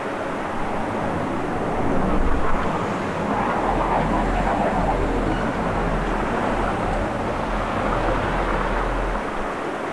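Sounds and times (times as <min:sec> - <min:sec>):
city ambience: 0:00.0 - 0:09.9.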